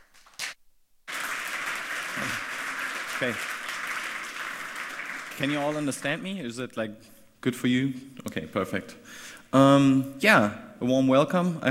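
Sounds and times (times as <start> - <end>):
audience applause at a hacker conference talk: 1.1 - 6.4
speech: 3.2 - 3.5, 5.4 - 11.6.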